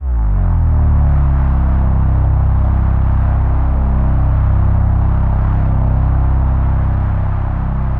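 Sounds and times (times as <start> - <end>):
evolving MPE synth bass: 0.0 - 7.9.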